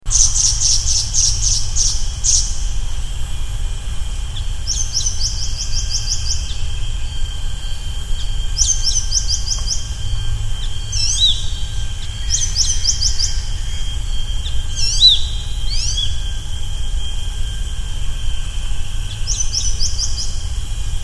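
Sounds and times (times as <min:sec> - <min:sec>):
cricket chirping: 0:00.0 - 0:21.0.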